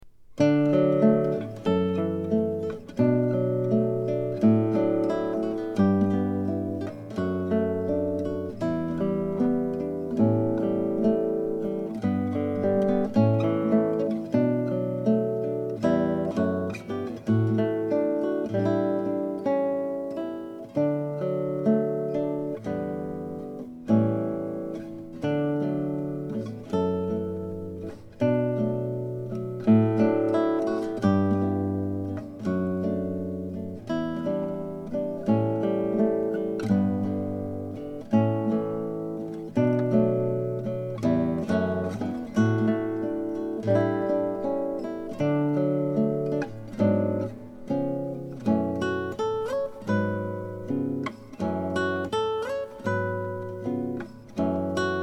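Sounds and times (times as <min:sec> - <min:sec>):
acoustic guitar cocktail and dinner music: 0:00.0 - 0:55.0.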